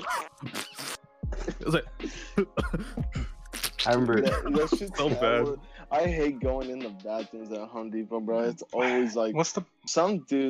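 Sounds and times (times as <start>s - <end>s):
throaty vocal noises: 0.0s - 6.4s
laughter: 1.3s - 3.1s, 3.8s - 6.3s, 8.3s - 9.6s
voice imitating a string of harsh coughs: 1.4s - 3.2s, 3.9s - 5.4s
speech: 1.6s - 3.3s, 3.9s - 10.4s.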